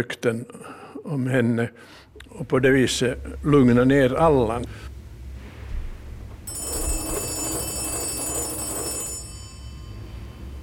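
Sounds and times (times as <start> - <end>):
speech: 0.0 - 4.9
telephone bell ringing: 6.5 - 10.6.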